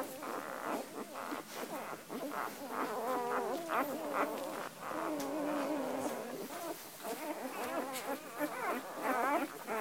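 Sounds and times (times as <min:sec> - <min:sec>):
first-week dog puppies whimpering and squeaking: 0:00.0 - 0:09.7.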